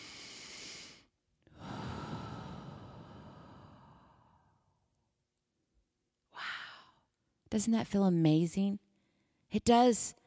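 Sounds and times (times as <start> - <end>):
deep breathing: 0.0 - 4.8
speech: 7.5 - 8.8, 9.5 - 10.2.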